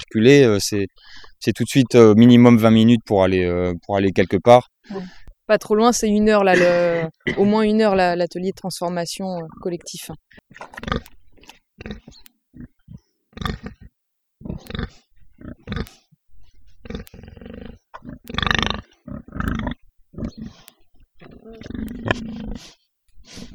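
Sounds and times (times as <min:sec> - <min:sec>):
speech: 0:00.1 - 0:11.2, 0:11.8 - 0:12.7, 0:13.4 - 0:13.7, 0:14.4 - 0:16.0, 0:20.2 - 0:23.5
pigs grunting and snorting: 0:06.5 - 0:07.7, 0:09.4 - 0:23.5.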